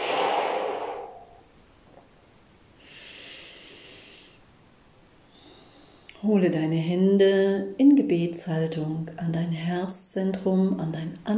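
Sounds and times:
powerful exhale during a guided yoga breathing exercise: 0.0s - 1.4s, 2.8s - 4.4s
soft steady breath: 0.0s - 1.5s, 2.7s - 6.3s
speech: 6.2s - 11.3s.

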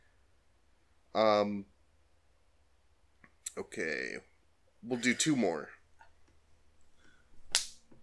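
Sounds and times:
speech: 1.2s - 1.7s, 3.6s - 5.8s
hand slapping forehead: 7.5s - 7.8s.

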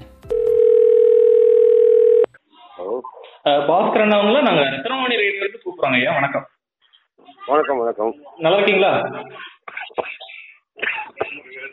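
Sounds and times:
telephone dial tone while placing a call: 0.3s - 2.3s
speech: 3.5s - 6.5s, 7.5s - 9.4s.

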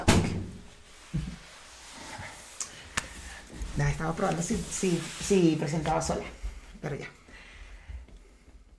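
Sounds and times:
door pushed shut with dull low thump: 0.0s - 0.6s
speech: 3.9s - 7.2s.

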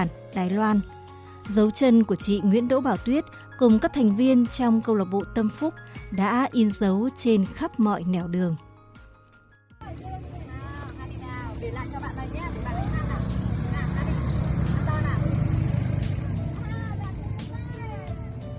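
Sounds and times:
speech: 0.0s - 8.6s
engine rumble of vehicles coming and going at a small house: 9.8s - 18.5s.

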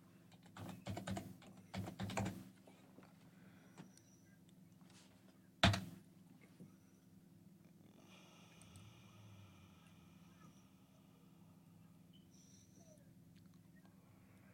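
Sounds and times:
low steady hum: 0.0s - 14.5s
typing on a computer keyboard: 0.3s - 2.4s, 5.6s - 5.9s.

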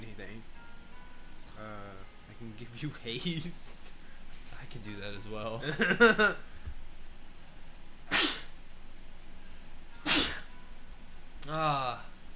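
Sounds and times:
speech: 2.4s - 4.0s, 4.7s - 6.5s
person sneezing: 8.1s - 8.5s, 10.0s - 10.5s.

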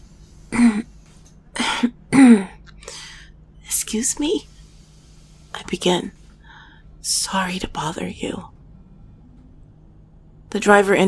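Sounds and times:
person softly clearing their throat on a bus: 0.5s - 0.9s
speech: 3.9s - 4.6s, 5.7s - 6.2s, 7.0s - 8.6s, 10.5s - 11.0s.

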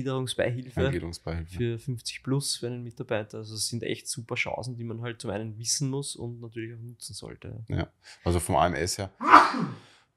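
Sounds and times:
speech: 0.0s - 9.9s
sneeze: 9.2s - 9.8s.

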